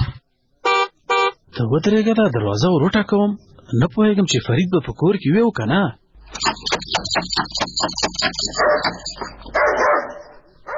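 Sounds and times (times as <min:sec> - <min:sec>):
speech: 0:01.6 - 0:10.2
dog barking at a house door: 0:07.3 - 0:10.7.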